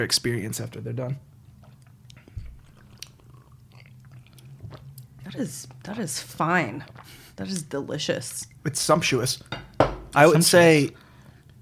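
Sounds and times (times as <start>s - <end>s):
speech: 0.0s - 1.3s, 5.4s - 11.0s
low steady hum: 0.0s - 11.5s
people swallowing: 1.4s - 7.4s
people sipping oat milk: 1.4s - 7.7s.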